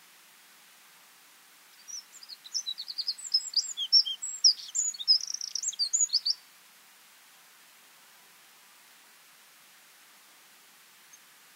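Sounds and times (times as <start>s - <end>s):
light background hiss: 0.0s - 11.5s
Eurasian wren Troglodytes troglodytes song: 1.7s - 6.5s, 11.0s - 11.5s.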